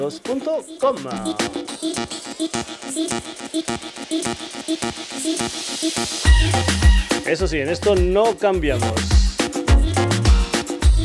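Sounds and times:
speech: 0.0s - 9.3s
punchy kick drum: 6.3s - 11.0s
steady bass line: 6.3s - 11.0s.

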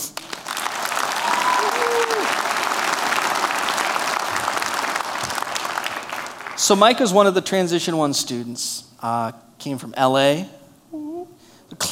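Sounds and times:
crowd applauding for a man being introduced: 0.0s - 6.9s
speech: 6.7s - 10.6s.

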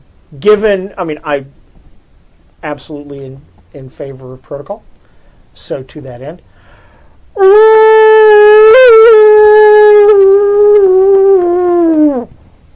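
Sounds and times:
speech: 0.3s - 1.6s, 2.6s - 4.9s, 5.6s - 6.5s, 7.4s - 7.7s
person imitating a wolf howl: 7.4s - 12.3s.

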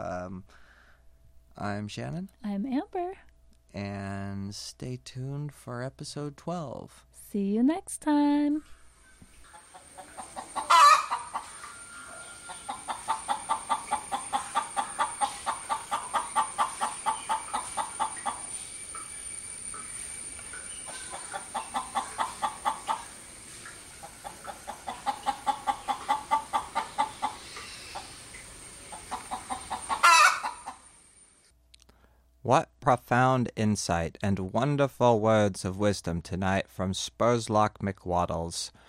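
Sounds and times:
speech: 0.0s - 0.7s, 1.6s - 8.8s, 32.5s - 38.8s
chicken clucking: 9.5s - 18.6s, 20.6s - 23.2s, 23.8s - 28.2s, 28.8s - 30.8s.

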